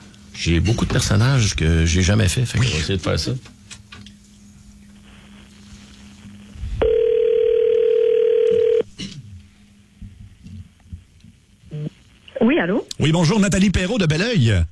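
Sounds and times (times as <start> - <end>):
faint hum: 0.0 - 14.7
speech: 0.4 - 3.6, 12.6 - 14.7
telephone dial tone while dialing a call: 6.8 - 8.8.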